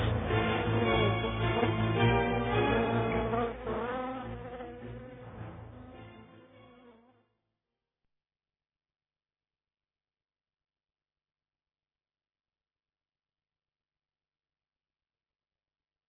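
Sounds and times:
mosquito buzzing: 0.0 - 7.3.

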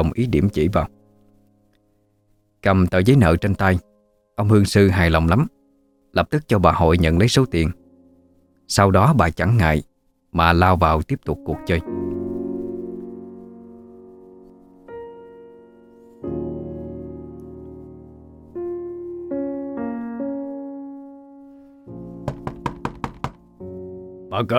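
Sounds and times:
speech: 0.0 - 1.0, 2.6 - 7.8, 8.7 - 12.1, 24.4 - 24.5
music: 0.0 - 24.5
loud banging on a door from outside a gate: 22.2 - 23.5.

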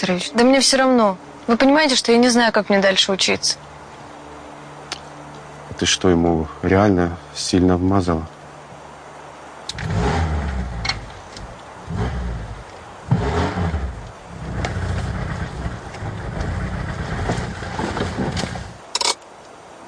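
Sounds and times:
speech: 0.0 - 3.7, 5.8 - 8.3
blue Moskvich car engine revving in rough surges: 9.7 - 18.8.

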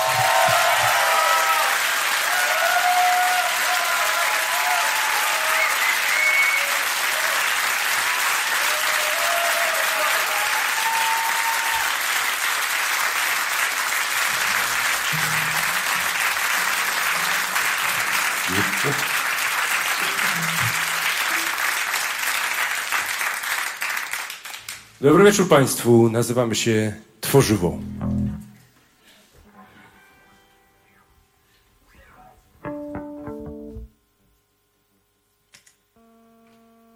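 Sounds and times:
audience applause at a live radio music event: 0.0 - 24.9
speech: 25.0 - 28.0.

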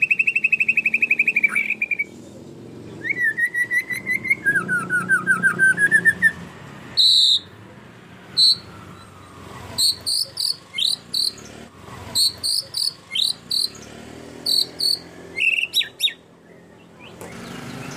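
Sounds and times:
canary song used as a tutor for training songbirds: 0.0 - 2.2, 2.8 - 7.6, 8.3 - 17.9.

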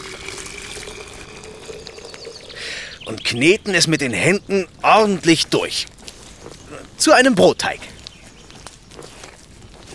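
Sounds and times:
water poured into freshly ground flour in a bowl: 0.0 - 2.6
speech: 3.1 - 5.9, 7.0 - 7.9.

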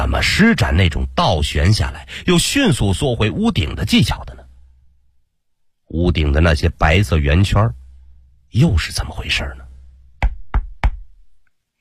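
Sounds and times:
speech: 0.2 - 4.4, 5.9 - 7.8, 8.5 - 9.6
firm knocks on a house door: 10.2 - 11.1.

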